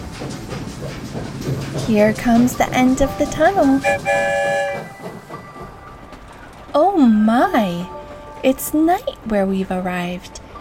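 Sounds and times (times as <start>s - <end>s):
train rolling along the tracks: 0.0s - 10.5s
train wheels clacking rhythmically: 0.0s - 10.5s
speech: 1.2s - 4.8s, 6.8s - 10.4s
train horn sounding a short chord: 3.6s - 5.1s.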